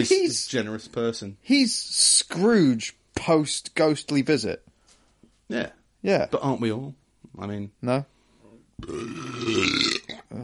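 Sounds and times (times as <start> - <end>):
speech: 0.0 - 4.7, 5.5 - 8.1, 8.8 - 10.4
loud deep throaty belch: 8.8 - 10.2.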